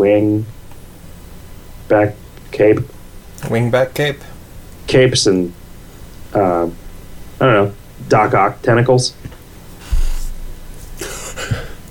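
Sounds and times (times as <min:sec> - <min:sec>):
speech: 0:00.0 - 0:00.6, 0:01.9 - 0:04.3, 0:04.9 - 0:05.6, 0:06.3 - 0:06.8, 0:07.4 - 0:09.4
deep inhaling yawn: 0:11.0 - 0:11.8.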